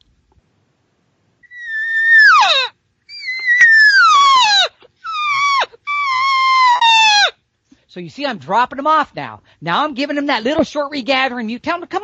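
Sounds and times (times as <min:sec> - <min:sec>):
hunter blowing a cow call in drawn-out mewing wails: 0:01.4 - 0:07.4
speech: 0:08.0 - 0:12.0.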